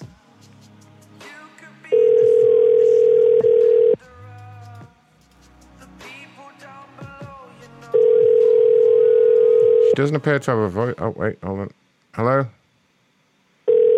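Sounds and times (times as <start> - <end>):
telephone ringing tone on an unanswered call: 1.9 - 4.0, 8.0 - 10.0, 13.7 - 13.9
speech: 10.0 - 12.6.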